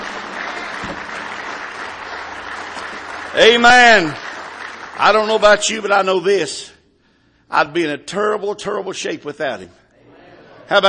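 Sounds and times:
audience applauding in praise: 0.0s - 6.0s
speech: 3.4s - 4.2s, 5.0s - 6.7s, 7.5s - 9.8s, 10.7s - 10.8s.

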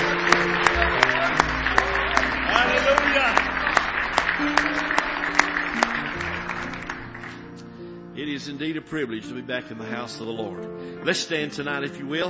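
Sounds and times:
audience applauding: 0.0s - 7.7s
speech: 8.4s - 12.2s.

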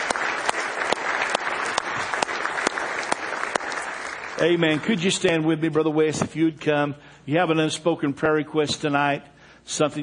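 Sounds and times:
continuous scattered applause: 0.0s - 5.2s
crowd clapping in a steady rhythmic beat: 0.0s - 5.5s
speech: 4.4s - 10.0s.

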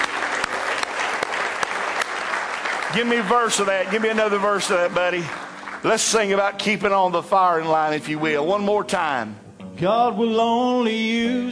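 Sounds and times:
worship congregation clapping hands in praise: 0.0s - 7.6s
speech: 2.9s - 11.5s.

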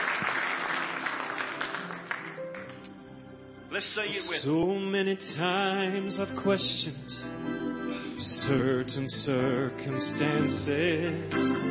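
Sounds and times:
audience applause: 0.0s - 2.9s
speech: 3.8s - 7.5s, 8.2s - 11.6s.

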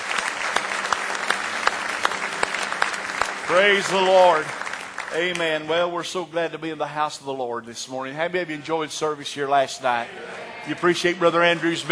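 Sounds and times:
audience clapping: 0.0s - 6.3s, 10.8s - 11.8s
speech: 3.5s - 11.8s.

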